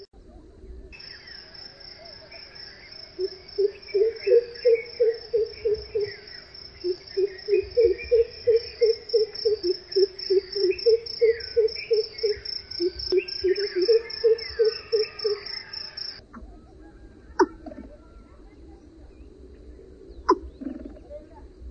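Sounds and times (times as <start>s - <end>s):
crow pheasant calling: 2.3s - 17.8s, 20.3s - 21.0s.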